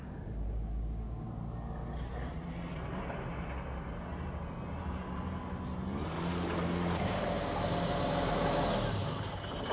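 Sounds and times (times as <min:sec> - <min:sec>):
dense road traffic rumble: 0:00.0 - 0:09.6.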